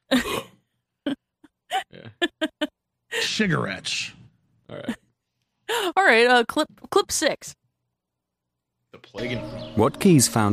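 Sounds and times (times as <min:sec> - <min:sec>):
person coughing and clearing their throat: 0:00.1 - 0:00.6
speech: 0:03.4 - 0:04.2, 0:06.1 - 0:07.6, 0:09.2 - 0:10.5.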